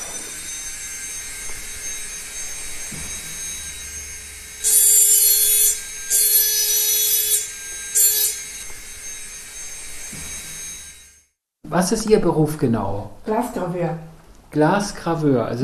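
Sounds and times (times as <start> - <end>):
crystal glass pressed against a grinding wheel: 0.0 - 11.2
machine whine in a crystal glass grinding shop: 0.0 - 11.3
speech: 11.7 - 15.6.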